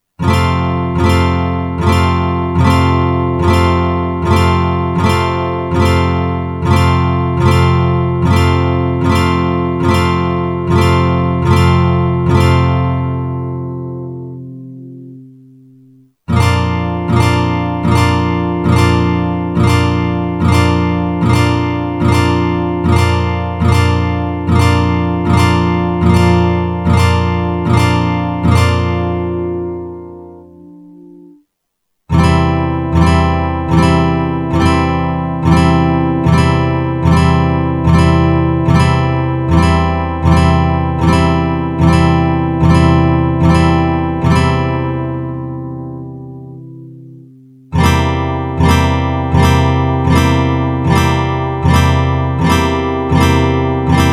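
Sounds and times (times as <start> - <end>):
chord progression in F: 0.2 - 14.9, 16.3 - 31.4, 32.1 - 47.0, 47.7 - 54.1.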